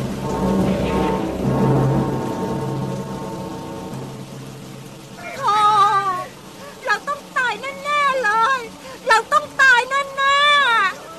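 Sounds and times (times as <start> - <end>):
storm wind roaring: 0.0 - 7.7
heavy rain: 0.0 - 11.1.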